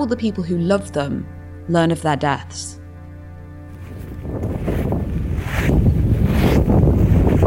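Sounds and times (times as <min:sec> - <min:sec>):
speech: 0:00.0 - 0:02.8
people walking over gravel through a graveyard: 0:03.7 - 0:07.4
strong wind buffeting the microphone in a graveyard: 0:03.8 - 0:07.4.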